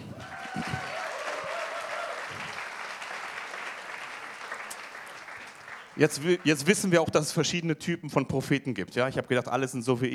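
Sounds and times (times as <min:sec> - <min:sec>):
sustained applause from a sizable audience: 0:00.0 - 0:06.9
faint voice or cheer: 0:00.2 - 0:02.6
speech: 0:06.0 - 0:10.1.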